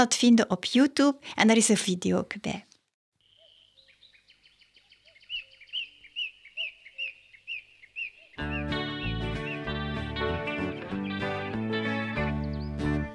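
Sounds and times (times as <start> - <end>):
speech: 0.0 - 2.7
bright repeated bird chirps: 3.2 - 9.7, 12.3 - 13.0
loud musical song intro: 8.4 - 13.1.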